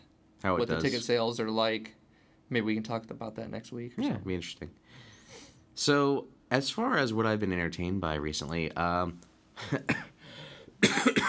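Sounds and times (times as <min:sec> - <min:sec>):
speech: 0:00.4 - 0:10.1
person recovering from a cough coughing: 0:09.6 - 0:10.1, 0:10.8 - 0:11.2.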